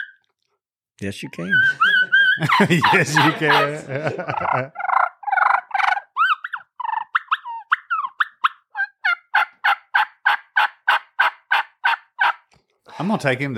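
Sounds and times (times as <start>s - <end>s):
turkey call device making kee-kee and yelping calls: 0.0s - 0.2s, 1.4s - 3.7s, 4.3s - 12.5s
speech: 1.0s - 4.8s, 13.0s - 13.5s
laughter: 1.3s - 4.9s, 12.9s - 13.5s.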